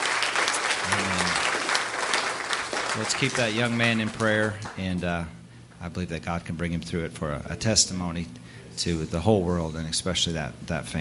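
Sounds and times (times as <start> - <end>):
church congregation clapping hands in praise: 0.0 - 4.9
speech: 3.0 - 10.9.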